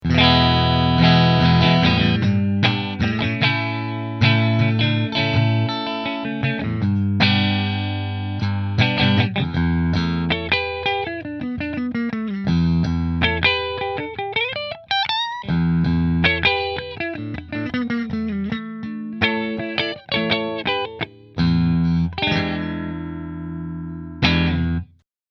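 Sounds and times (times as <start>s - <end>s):
Fender guitars: 0.0s - 25.0s.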